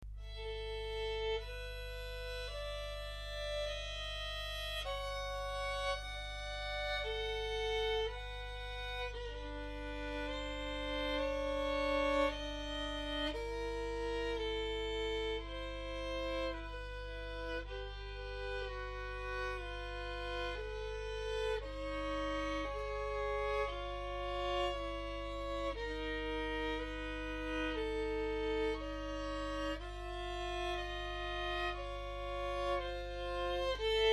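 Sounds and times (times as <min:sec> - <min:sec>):
violin slur: 0:00.3 - 0:34.1.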